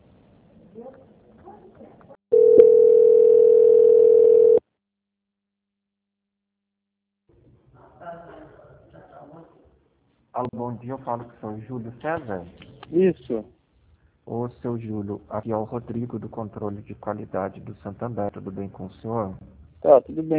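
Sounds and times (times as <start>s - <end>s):
speech: 0.8s - 2.0s, 10.4s - 13.6s, 14.3s - 20.3s
telephone line tone while call is transferred: 2.3s - 4.6s.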